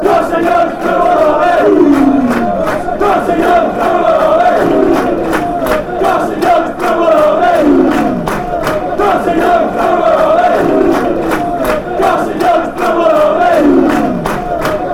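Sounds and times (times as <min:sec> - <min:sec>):
fans chanting: 0:00.0 - 0:14.9.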